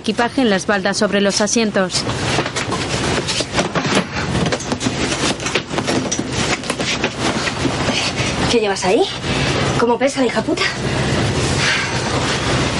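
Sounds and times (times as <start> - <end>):
speech: 0.0 - 3.4, 8.5 - 11.0
train carriage rolling on rails: 0.0 - 12.7
rattling and clatter of a train carriage: 1.9 - 8.6.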